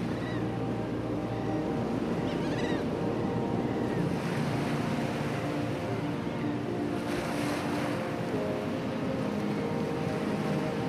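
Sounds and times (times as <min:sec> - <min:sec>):
faint bird calls: 0:00.0 - 0:00.6, 0:01.3 - 0:04.0
Atlantic ocean waves sloshing around a boat: 0:00.0 - 0:10.8.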